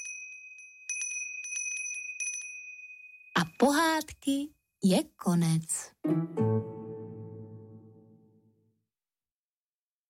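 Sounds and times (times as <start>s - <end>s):
small bell ringing: 0.0s - 3.6s
speech: 3.4s - 6.7s.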